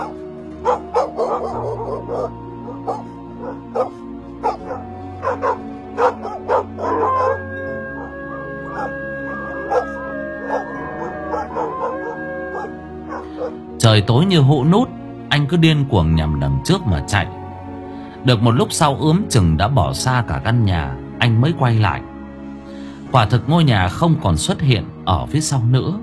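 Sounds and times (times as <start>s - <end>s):
pack of dogs barking as if chasing: 0.0s - 13.7s
speech: 14.0s - 17.4s, 18.2s - 22.1s, 23.1s - 26.0s.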